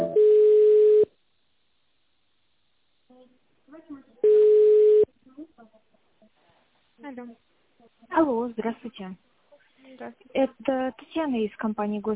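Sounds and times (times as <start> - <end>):
layered telephone beeps while a call is transferred: 0.1 - 1.1, 4.3 - 5.1
speech: 8.9 - 9.3, 10.0 - 12.1.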